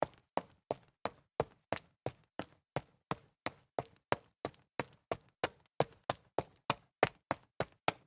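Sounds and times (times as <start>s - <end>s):
sneakers jogging up concrete stairs: 0.0s - 8.0s.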